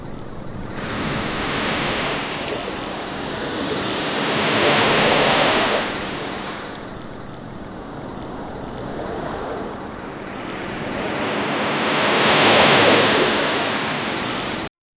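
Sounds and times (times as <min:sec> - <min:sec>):
calm sea at a beach: 0:00.0 - 0:14.7.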